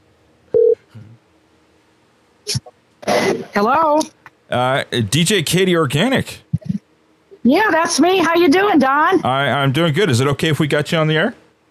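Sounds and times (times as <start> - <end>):
electronic telephone tone: 0.6 - 0.8
speech: 3.6 - 6.4, 7.4 - 11.4.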